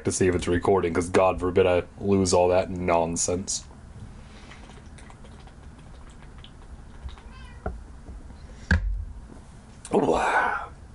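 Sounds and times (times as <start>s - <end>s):
speech: 0.0s - 3.7s
cat meowing: 7.1s - 7.8s
dull thump: 7.6s - 9.2s.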